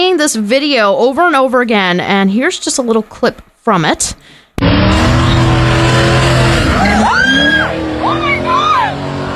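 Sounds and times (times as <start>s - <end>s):
speech: 0.2s - 5.1s
car engine roaring while stunting at night in heavy traffic: 4.6s - 9.3s
tires screeching as the car skids and spins: 4.6s - 9.3s.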